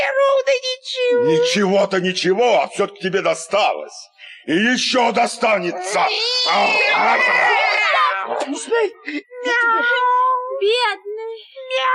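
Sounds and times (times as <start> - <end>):
speech: 0.4 - 11.9
cat meowing and crying in pain: 5.6 - 8.3
laughter: 6.4 - 9.8.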